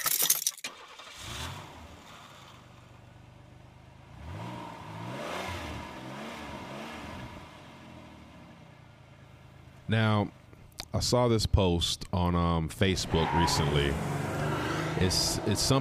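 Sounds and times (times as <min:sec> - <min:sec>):
keys jangling: 0:00.0 - 0:00.7
car engine cranking, starting, idling and revving: 0:00.7 - 0:10.5, 0:12.9 - 0:15.7
speech: 0:09.9 - 0:14.2, 0:15.0 - 0:15.7.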